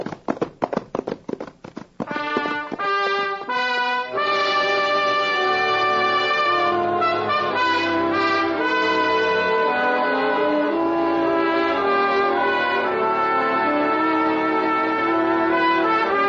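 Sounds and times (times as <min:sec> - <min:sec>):
horse hooves galloping: 0:00.0 - 0:04.1
orchestral music: 0:02.1 - 0:16.2.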